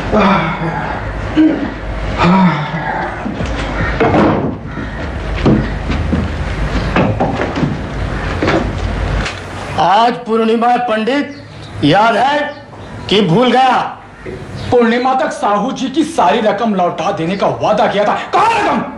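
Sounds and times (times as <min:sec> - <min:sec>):
speech: 0:00.2 - 0:02.7, 0:09.9 - 0:18.9
door opening: 0:03.2 - 0:09.4
knocking on a door: 0:03.8 - 0:07.8.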